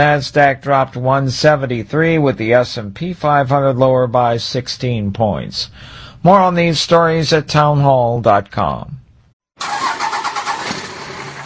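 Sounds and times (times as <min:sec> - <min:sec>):
speech: 0:00.0 - 0:09.0
diesel truck engine starting and running: 0:09.6 - 0:11.4.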